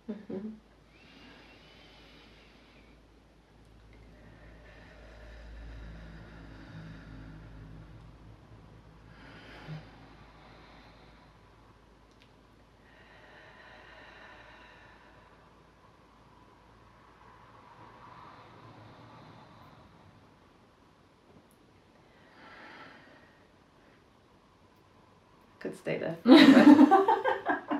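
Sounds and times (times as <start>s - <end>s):
low steady rumble: 0.0s - 27.7s
slow deep breaths in and out: 0.6s - 25.6s
speech: 25.6s - 27.6s.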